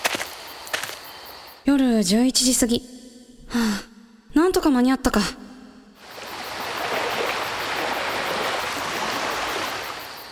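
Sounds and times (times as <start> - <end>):
speech: 1.6 - 3.9, 4.6 - 5.4
waves rushing onto a beach at night: 6.0 - 10.2.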